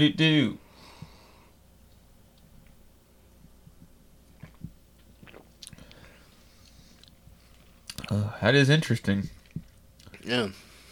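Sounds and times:
speech: 0.0 - 0.6, 8.1 - 9.4, 10.3 - 10.7
low hum: 0.0 - 10.9
person sipping a dark malty drink: 4.4 - 8.1.

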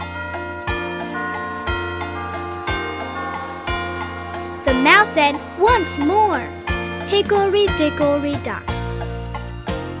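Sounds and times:
clock striking four: 0.0 - 9.9
speech: 4.7 - 8.7.

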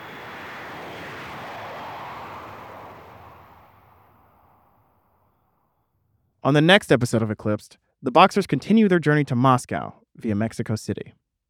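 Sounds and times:
jet airplane taking off: 0.0 - 5.4
speech: 6.4 - 11.2.

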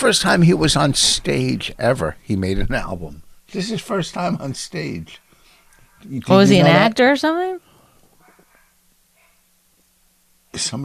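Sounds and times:
speech: 0.0 - 5.2, 6.0 - 7.7, 10.6 - 10.8
low steady hum: 0.0 - 10.8
dog barking: 8.2 - 9.5.

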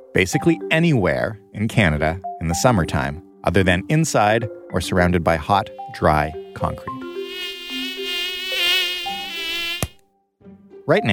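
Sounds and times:
speech: 0.2 - 7.2, 10.9 - 11.1
mosquito buzzing in Canada in summertime: 5.8 - 10.0.

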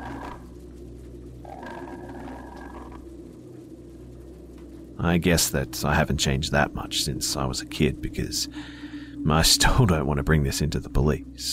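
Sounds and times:
drawn-out snarling growl: 0.0 - 0.5, 1.4 - 3.0
constant low rumble: 0.0 - 11.5
speech: 5.0 - 11.5.

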